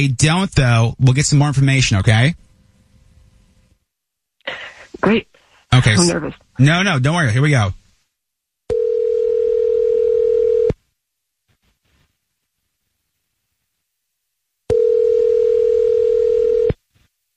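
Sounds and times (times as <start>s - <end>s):
speech: 0.0s - 2.5s, 4.5s - 7.8s
telephone dial tone on an outgoing call: 8.7s - 10.8s, 14.7s - 16.8s.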